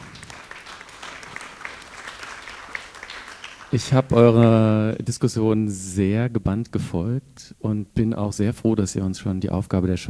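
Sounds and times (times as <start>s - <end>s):
audience applause: 0.0s - 4.6s
speech: 3.7s - 10.0s.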